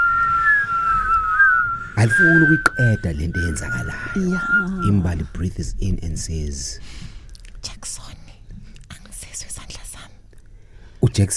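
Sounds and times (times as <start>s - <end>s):
wind whistling softly: 0.0s - 6.8s
speech: 2.0s - 7.1s, 11.2s - 11.3s.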